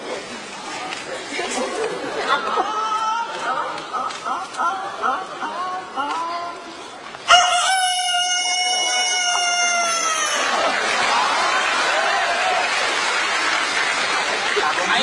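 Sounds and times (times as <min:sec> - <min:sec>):
laughter: 0:00.0 - 0:06.2, 0:08.8 - 0:15.0
audience noise: 0:00.0 - 0:15.0
person imitating a big rooster's crow: 0:07.3 - 0:10.5.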